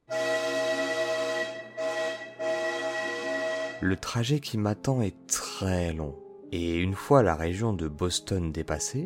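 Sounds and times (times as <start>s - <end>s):
loud train whistle blasts: 0.0s - 4.1s
speech: 3.8s - 9.0s.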